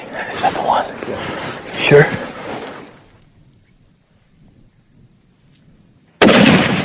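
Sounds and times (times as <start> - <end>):
speech: 0.4 - 2.3
rifle shot from a hunter firing at an oryx: 6.2 - 6.8.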